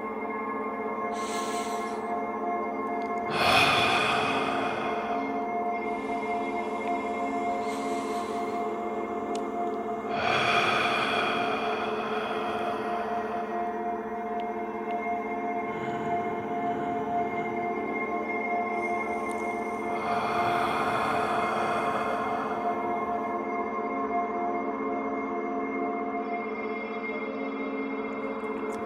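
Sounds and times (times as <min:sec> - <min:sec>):
steady sustained humming drone: 0:00.0 - 0:28.8
slow deep meditative breaths: 0:01.1 - 0:02.2, 0:03.1 - 0:23.7.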